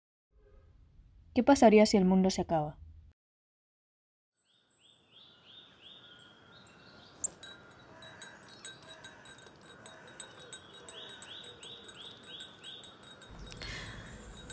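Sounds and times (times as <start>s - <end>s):
speech: 1.4s - 2.8s
birds chirping outdoors: 4.4s - 14.5s.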